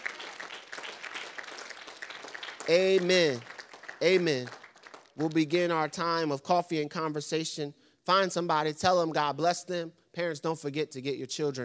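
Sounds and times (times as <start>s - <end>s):
church congregation clapping hands in worship: 0.0s - 6.3s
speech: 2.7s - 4.6s, 5.2s - 11.6s.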